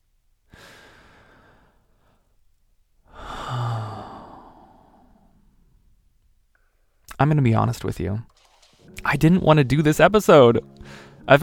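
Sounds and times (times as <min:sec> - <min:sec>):
person taking a deep breath: 0:00.5 - 0:02.4, 0:03.0 - 0:06.0, 0:10.8 - 0:11.2
speech: 0:07.2 - 0:08.4, 0:09.1 - 0:11.4.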